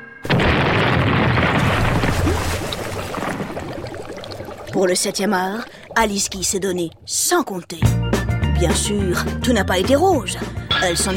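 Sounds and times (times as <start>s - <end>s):
real boat exploding in a staged film stunt: 0.2s - 6.6s
speech: 4.8s - 8.0s, 8.6s - 11.1s.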